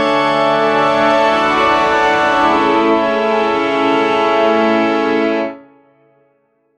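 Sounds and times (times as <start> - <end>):
orchestra playing a transition: 0.1 - 5.5.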